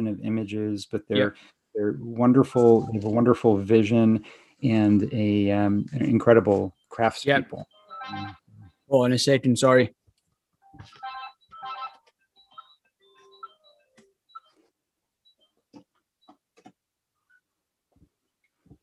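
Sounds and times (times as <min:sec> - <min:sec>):
speech: 0:00.0 - 0:10.0
phone ringing: 0:07.6 - 0:08.4, 0:10.7 - 0:14.6
short electronic beeps: 0:07.6 - 0:08.4, 0:10.8 - 0:14.6
quiet clicks and taps: 0:15.6 - 0:18.8.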